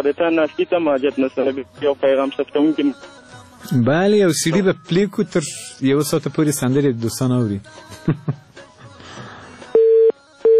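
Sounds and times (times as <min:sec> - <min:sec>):
speech: 0:00.0 - 0:08.6
telephone busy tone after a dropped phone call: 0:09.8 - 0:10.5.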